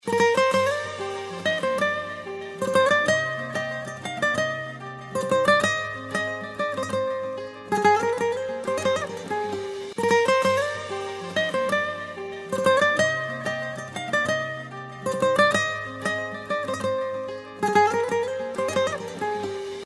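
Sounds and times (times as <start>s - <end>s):
guitar gudok ringtone: 0.0s - 19.8s.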